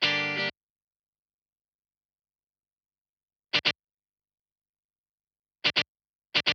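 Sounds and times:
guitar playing in G minor at 128 BPM: 0:00.0 - 0:00.5.

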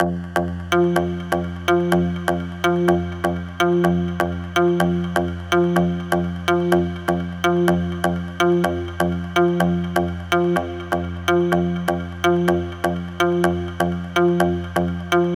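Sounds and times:
synth loop: 0:00.0 - 0:15.3.

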